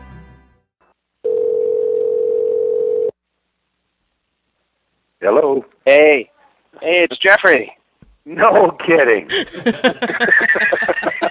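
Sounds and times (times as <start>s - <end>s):
telephone dial tone after a dropped phone call: 1.3s - 3.1s
speech: 5.2s - 11.2s
laughter: 9.3s - 11.2s.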